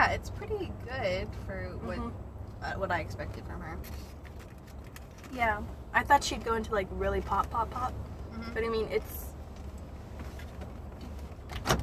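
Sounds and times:
low steady rumble: 0.0s - 11.8s
speech: 0.2s - 4.2s, 5.3s - 9.3s
car door locks engaging: 11.5s - 11.8s.

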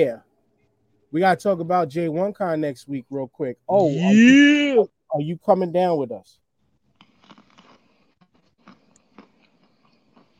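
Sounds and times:
speech: 0.0s - 0.3s, 1.1s - 6.4s
wet crunchy chewing: 6.6s - 10.3s.

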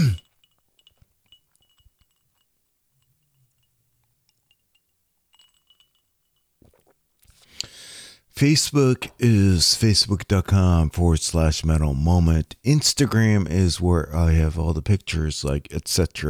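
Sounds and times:
small mouth clicks: 0.0s - 0.4s, 7.5s - 7.8s
quick sip of a drink from a glass: 0.0s - 2.4s, 4.3s - 8.3s
faint glass clinks: 0.0s - 6.9s
speech: 8.4s - 16.2s.

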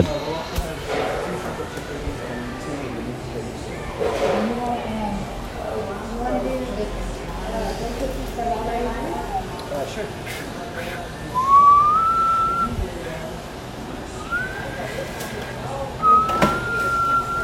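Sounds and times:
noise: 0.0s - 17.4s
failed breathy whistle attempts: 11.4s - 12.8s, 14.2s - 15.0s, 16.0s - 17.4s.

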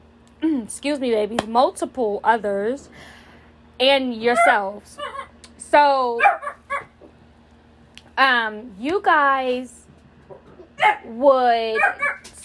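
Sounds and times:
speech: 0.5s - 3.2s, 3.8s - 6.5s, 8.2s - 9.8s, 10.8s - 12.2s
dogs barking, yipping and whining: 4.2s - 5.4s, 6.2s - 7.2s, 10.3s - 12.4s.

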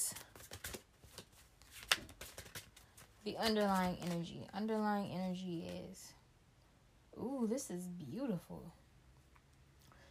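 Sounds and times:
shuffling of tarot cards: 0.1s - 4.5s
sharper snap of tarot cards: 0.2s - 2.8s
speech: 3.2s - 6.2s, 7.2s - 8.8s.

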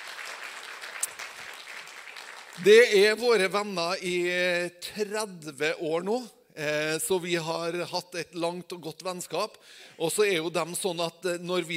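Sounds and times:
audience applause in a hall at a church gathering: 0.0s - 3.0s
speech: 2.6s - 11.7s.

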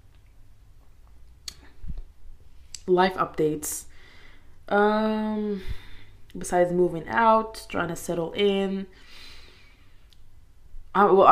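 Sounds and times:
wet lip click while sipping water: 1.4s - 2.1s
speech: 2.9s - 3.9s, 4.7s - 9.1s, 10.9s - 11.2s.

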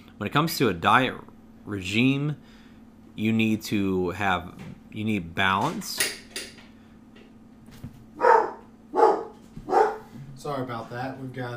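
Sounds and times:
faint hum: 0.0s - 11.5s
speech: 0.2s - 2.6s, 3.2s - 6.2s, 10.5s - 11.5s
dog barking: 8.2s - 10.2s.

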